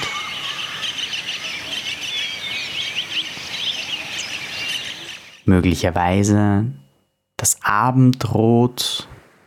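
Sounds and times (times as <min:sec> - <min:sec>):
many overlapping high bird chirps and trills in dense jungle: 0:00.0 - 0:05.6
soft hiss of rustle in jungle: 0:00.0 - 0:09.4
speech: 0:05.5 - 0:06.8, 0:07.7 - 0:09.0.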